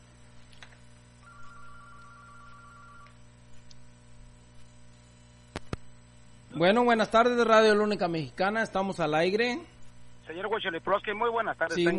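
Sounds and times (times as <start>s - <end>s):
telephone ringing with an incoming call: 1.2s - 3.2s
speech: 6.6s - 9.7s, 10.3s - 11.9s.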